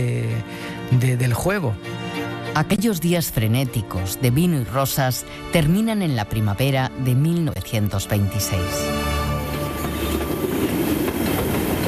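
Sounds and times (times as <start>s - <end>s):
speech: 0.0s - 2.0s, 2.6s - 9.1s
train running on rails: 8.8s - 11.8s.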